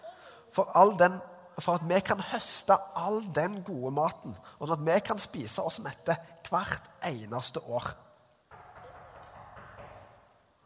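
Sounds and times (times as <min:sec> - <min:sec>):
speech: 0:00.6 - 0:08.0
hollow knocking on a door: 0:08.5 - 0:10.4.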